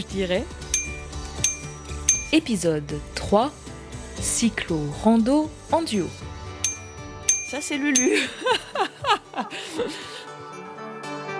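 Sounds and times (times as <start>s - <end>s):
speech: 0.0s - 0.6s, 2.3s - 6.3s, 7.5s - 10.1s
bicycle bell ringing: 0.7s - 2.5s, 5.9s - 8.5s
laughter: 8.1s - 10.4s.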